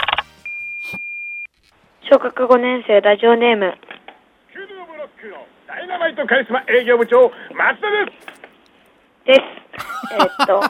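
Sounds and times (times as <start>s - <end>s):
answering machine electronic chirps: 0.0s - 1.5s
speech: 2.0s - 3.9s, 5.2s - 8.3s, 9.3s - 10.6s
laughter: 9.8s - 10.6s.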